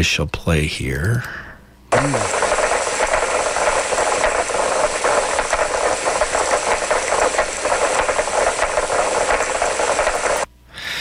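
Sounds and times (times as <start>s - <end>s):
speech: 0.0s - 2.5s
chorus of sperm whale clicks underwater: 1.9s - 10.5s.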